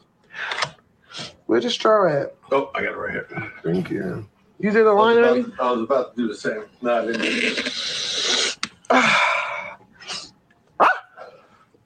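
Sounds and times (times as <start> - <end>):
person sniffing harshly: 0.5 - 1.4, 7.4 - 8.6, 10.0 - 10.3
speech: 1.5 - 7.9
person barking imitating a dog: 10.8 - 11.4.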